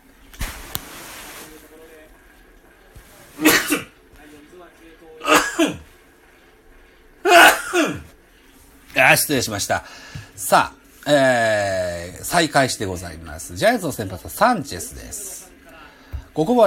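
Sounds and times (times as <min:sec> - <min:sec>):
noisy rustle: 0:00.0 - 0:04.6
person sneezing: 0:03.4 - 0:03.9, 0:05.2 - 0:05.8, 0:07.2 - 0:08.1
speech: 0:09.0 - 0:15.4, 0:16.4 - 0:16.6.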